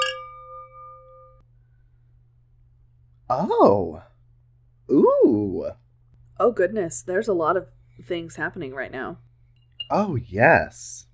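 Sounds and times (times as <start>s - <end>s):
champagne glasses clinking in a toast: 0.0s - 1.4s
speech: 3.3s - 4.1s, 4.9s - 5.8s, 6.4s - 9.3s, 9.9s - 11.1s.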